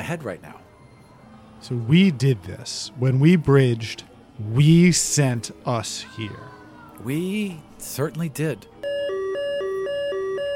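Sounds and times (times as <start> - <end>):
speech: 0.1 - 0.7, 1.6 - 8.7
electronic alarm blaring in a two-tone pattern: 8.8 - 10.5.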